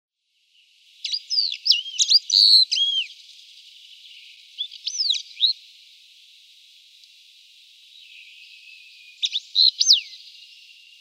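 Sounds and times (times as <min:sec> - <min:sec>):
soft background hiss: 0:00.2 - 0:10.9
wallcreeper sharp high chirps and slurred whistles: 0:01.0 - 0:03.1, 0:04.6 - 0:05.6, 0:09.2 - 0:10.2.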